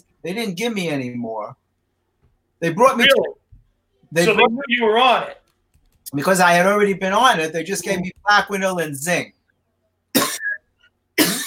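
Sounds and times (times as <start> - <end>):
speech: 0.2 - 1.6, 2.6 - 3.4, 4.1 - 5.4, 6.1 - 9.4
person coughing harshly into a microphone: 10.2 - 10.6, 11.2 - 11.4.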